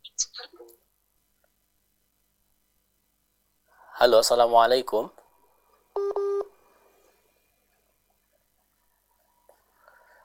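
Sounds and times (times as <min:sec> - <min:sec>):
speech: 0:04.0 - 0:05.2
keypad-style tones on a radio call-in line: 0:06.0 - 0:06.5.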